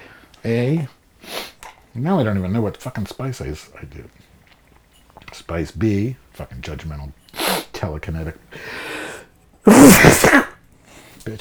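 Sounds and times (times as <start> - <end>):
speech: 0.4 - 1.0, 2.0 - 4.3, 5.4 - 7.2, 7.8 - 8.9
breathy intake of air: 1.2 - 4.1, 7.3 - 11.3
person sneezing loudly: 1.3 - 1.6, 7.4 - 7.8, 8.7 - 10.6.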